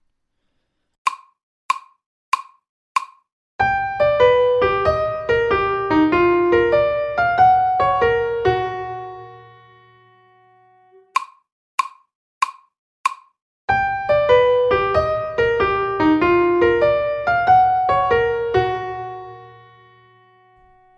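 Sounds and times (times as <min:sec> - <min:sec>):
sharp count-in clicks: 0:01.1 - 0:03.2, 0:11.1 - 0:13.3
bright melody of major triad arpeggios: 0:03.7 - 0:11.1, 0:13.8 - 0:20.9.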